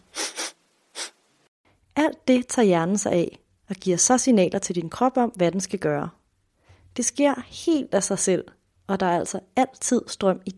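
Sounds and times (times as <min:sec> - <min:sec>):
person sniffing, smelling something: 0:00.0 - 0:01.2
speech: 0:02.0 - 0:06.2, 0:07.0 - 0:10.5.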